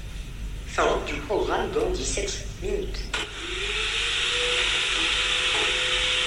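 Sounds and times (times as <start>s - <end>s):
connected washing machine in spin mode: 0.0s - 6.2s
speech: 0.8s - 3.7s.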